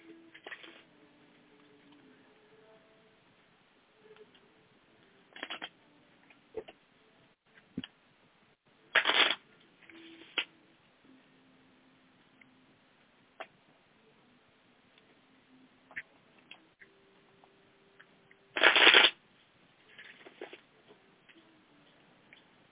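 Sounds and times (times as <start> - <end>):
tarot cards being shuffled by hand: 5.4 - 5.7, 9.0 - 9.4, 18.6 - 19.2.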